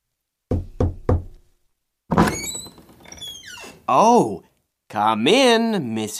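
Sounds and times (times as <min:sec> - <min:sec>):
firm knocks on a wooden door: 0:00.5 - 0:01.4
door opening with a rattle and a high creaking squeak: 0:02.1 - 0:03.8
speech: 0:03.9 - 0:06.1.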